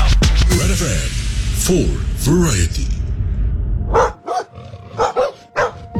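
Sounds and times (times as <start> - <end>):
low rumbling background: 0.6 - 4.2
speech: 1.0 - 3.0
dog barking aggressively with loud harsh barks: 3.9 - 5.9.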